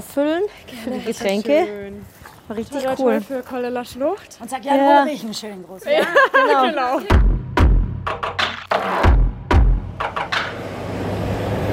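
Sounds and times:
speech: 0.2 - 7.4
laughter: 5.8 - 7.2
sharp thuds: 7.1 - 10.6
busy road traffic with many cars at a large roundabout: 8.5 - 11.7.

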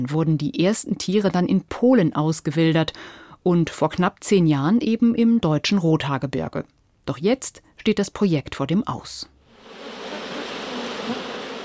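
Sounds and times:
speech: 0.0 - 9.9
aggressive bee swarm buzzing: 9.5 - 11.6.

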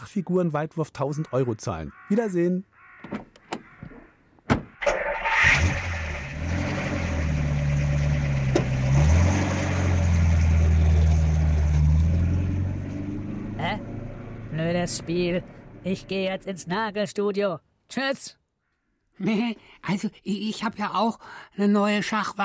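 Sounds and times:
speech: 0.1 - 3.2, 14.8 - 18.4, 19.2 - 22.4
car door clunks: 3.0 - 4.8
car engine starting, idling and revving while pulling away: 4.8 - 16.2.

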